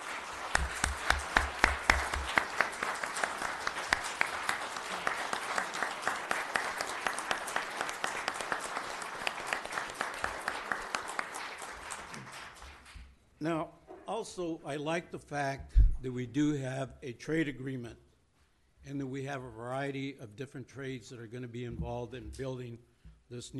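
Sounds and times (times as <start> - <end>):
standing crowd applauding police officers: 0.0 - 13.0
speech: 13.4 - 18.0, 18.8 - 23.5.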